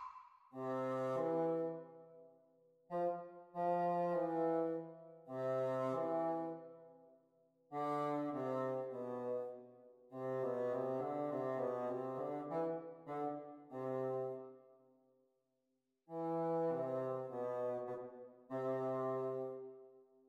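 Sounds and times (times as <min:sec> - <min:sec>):
bassoon duet: 0:00.6 - 0:02.0, 0:02.9 - 0:06.7, 0:07.8 - 0:09.6, 0:10.2 - 0:14.5, 0:16.1 - 0:19.7.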